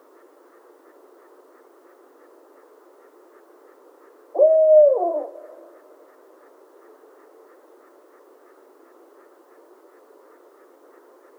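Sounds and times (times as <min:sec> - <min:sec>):
barred owl hooting: 0:04.3 - 0:06.2.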